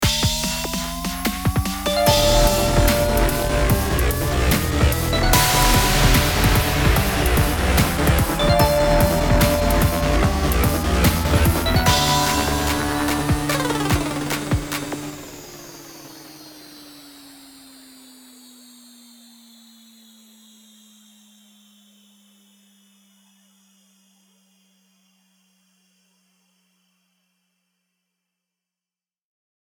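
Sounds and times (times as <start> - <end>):
electro hype music: 0.4 - 15.6.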